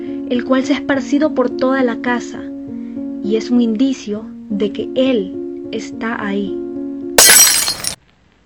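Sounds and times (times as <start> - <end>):
speech: 0.3 - 2.5, 3.2 - 6.6
glass bottle shattering: 7.2 - 8.0.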